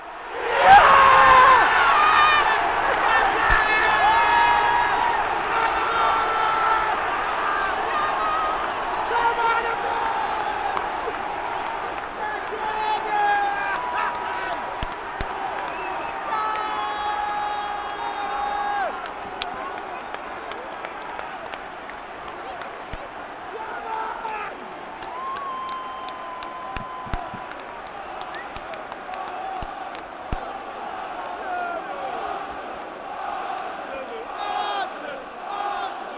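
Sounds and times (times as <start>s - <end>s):
football stadium crowd roaring and cheering: 0.0s - 36.1s
whistles in a football stadium crowd: 15.6s - 16.3s, 28.2s - 28.6s.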